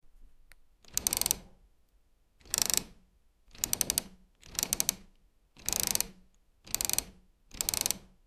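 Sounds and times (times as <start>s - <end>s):
mechanism clicking: 0.8s - 1.5s, 2.4s - 8.1s.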